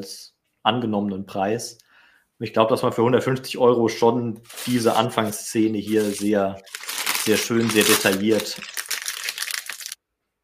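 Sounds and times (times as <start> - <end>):
speech: 0.0 - 8.8
crinkly material rustling: 4.4 - 10.0.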